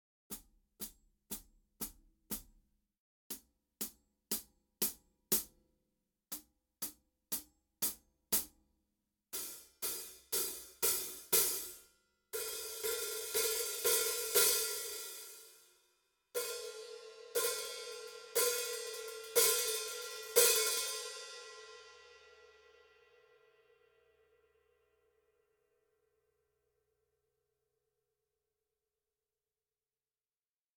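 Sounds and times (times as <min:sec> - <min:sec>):
14-inch hi-hat played with hickory sticks: 0:00.3 - 0:02.7, 0:03.3 - 0:05.7, 0:06.3 - 0:08.7, 0:09.4 - 0:15.7, 0:16.4 - 0:22.4.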